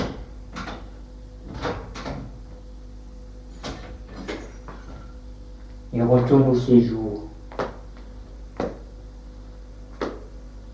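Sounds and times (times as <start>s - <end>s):
door shutting: 0.0s - 2.4s, 3.5s - 5.1s
low steady hum: 0.0s - 10.7s
speech: 6.0s - 7.1s.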